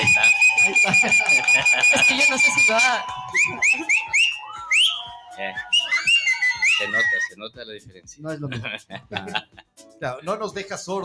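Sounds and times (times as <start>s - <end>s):
laughter: 0.0s - 4.0s, 8.5s - 9.6s
person whistling a short tune: 0.0s - 7.4s
speech: 1.7s - 4.2s, 6.8s - 11.0s.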